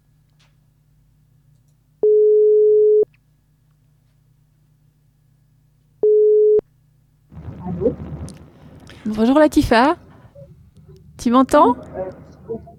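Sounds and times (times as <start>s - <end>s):
ringback tone of an outgoing phone call: 2.0s - 3.0s, 6.0s - 6.6s
speech: 9.0s - 10.0s, 11.2s - 12.7s.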